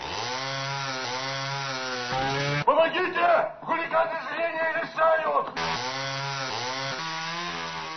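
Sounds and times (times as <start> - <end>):
power saw cutting: 0.0 - 2.7, 5.6 - 7.9
speech: 2.9 - 6.0.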